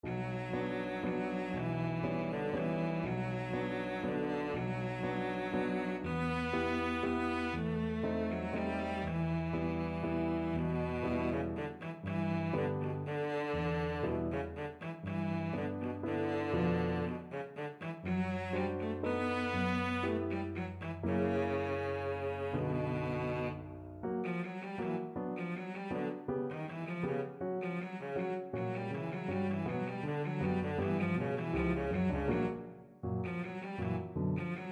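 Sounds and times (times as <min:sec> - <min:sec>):
waltz played on cello: 0:00.0 - 0:34.7.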